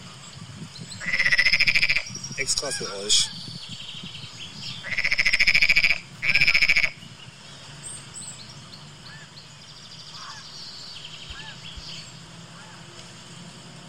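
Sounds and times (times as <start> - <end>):
outdoor noise: 0.0 - 13.8
frogs croaking in a park pond: 0.8 - 7.4, 9.0 - 12.9
speech: 2.4 - 3.5.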